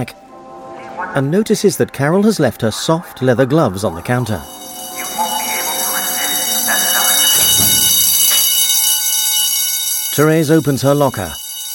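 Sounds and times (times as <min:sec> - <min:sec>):
speech: 0:00.0 - 0:00.2, 0:01.0 - 0:04.6, 0:10.2 - 0:11.4
loud electric bell ringing: 0:04.0 - 0:11.7.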